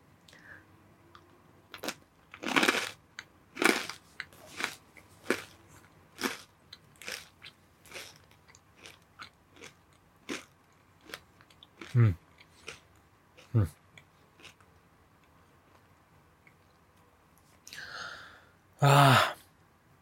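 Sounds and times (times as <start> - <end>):
crisp snack being bitten: 1.7 - 3.0, 3.6 - 5.6, 6.2 - 13.5, 14.4 - 14.6
chewing crunches of a crisp snack: 1.7 - 5.6, 6.2 - 14.7
speech: 12.0 - 12.2, 13.5 - 13.8, 18.8 - 19.3.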